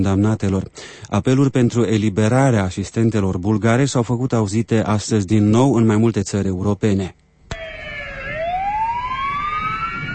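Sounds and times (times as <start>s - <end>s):
speech: 0.0s - 7.7s
ambulance and fire station sirens wailing: 7.5s - 10.1s.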